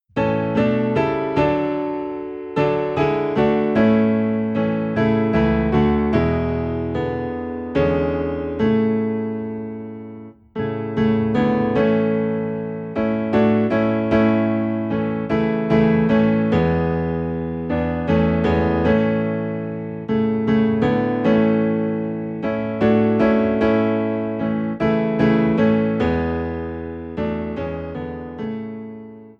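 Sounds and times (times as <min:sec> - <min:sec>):
low piano in A playing hymns: 0:00.0 - 0:29.3.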